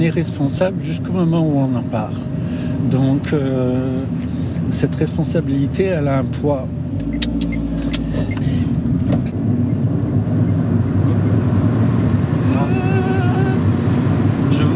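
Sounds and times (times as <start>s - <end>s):
speech: 0.0s - 7.5s
road noise from inside the vehicle: 0.0s - 14.7s
car engine accelerating to overtake two trucks: 6.6s - 14.7s.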